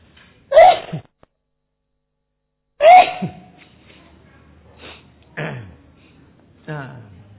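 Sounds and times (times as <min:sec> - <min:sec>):
loud sneezes: 0:00.5 - 0:01.1, 0:02.8 - 0:03.6, 0:04.8 - 0:05.7
man speaking quietly in short phrases: 0:06.6 - 0:07.3.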